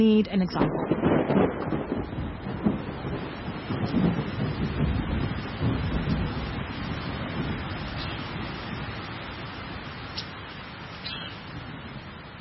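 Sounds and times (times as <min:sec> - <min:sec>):
speech: 0:00.0 - 0:02.6
deep low rumble of thunder: 0:00.0 - 0:12.3
steady rain pouring during a thunderstorm: 0:00.0 - 0:12.3.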